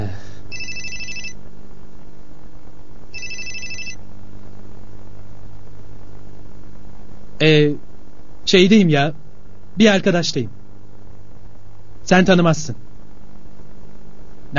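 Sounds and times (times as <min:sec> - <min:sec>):
constant low hum and hiss: 0:00.0 - 0:14.5
telephone ringing on the caller's end during a call: 0:00.5 - 0:01.4, 0:03.2 - 0:04.0
speech: 0:07.4 - 0:07.9, 0:08.5 - 0:09.2, 0:09.8 - 0:10.6, 0:12.1 - 0:12.8.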